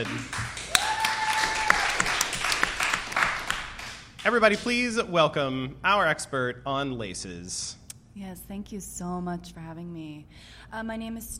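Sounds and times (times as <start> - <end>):
speech: 0.0 - 0.5, 4.2 - 11.3
crowd applauding: 0.0 - 4.8.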